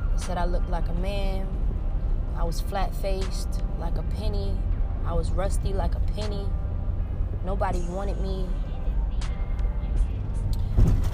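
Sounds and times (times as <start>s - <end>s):
car road noise heard from inside the vehicle: 0.0s - 11.1s
speech: 0.3s - 1.8s, 2.4s - 6.6s, 7.4s - 8.6s
small thump: 10.7s - 11.1s.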